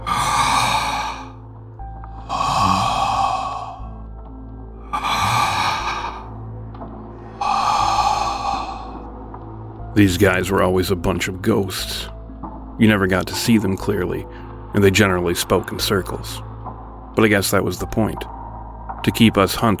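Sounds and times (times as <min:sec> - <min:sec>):
heavy hoarse breathing of someone waiting at a door: 0:00.0 - 0:09.4
speech: 0:10.0 - 0:12.2, 0:12.8 - 0:16.5, 0:17.2 - 0:18.4, 0:19.0 - 0:19.7.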